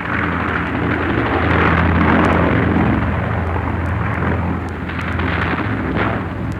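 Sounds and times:
Soviet bomber aircraft engines roaring: 0.0 - 6.5
blasts from Soviet bomber aircraft attacking: 4.8 - 6.5.

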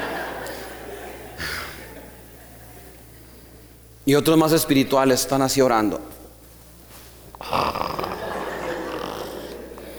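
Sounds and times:
laughter: 0.0 - 3.2, 8.0 - 9.9
speech: 4.1 - 6.2
man imitating snoring with his voice during a church sermon: 7.4 - 9.9.

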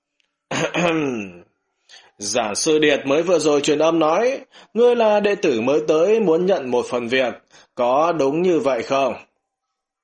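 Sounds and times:
old man clearing his throat: 0.5 - 1.4
speech: 0.6 - 9.3.

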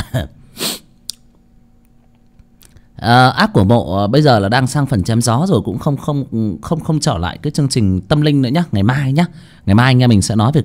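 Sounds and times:
person coughing from cold air-conditioned air: 0.0 - 0.9
speech: 0.2 - 0.4, 3.0 - 10.6.

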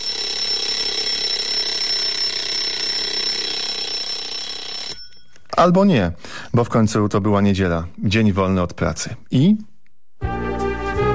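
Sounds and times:
alarm clock ringing with metallic high-pitched ring in a home: 0.0 - 5.5
speech: 5.6 - 9.7.

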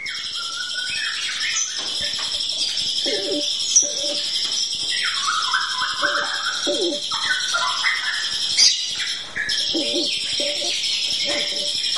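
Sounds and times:
oriental magpie-robin song: 0.0 - 11.9
high bird notes: 2.7 - 11.9.

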